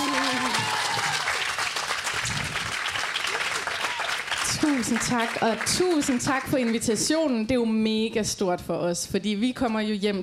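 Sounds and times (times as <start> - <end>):
cheers and voices: 0.0 - 1.5, 3.3 - 7.3
crowd in Aarhus applauding to welcome guests onto a stage: 0.0 - 7.3
speech: 4.6 - 10.2.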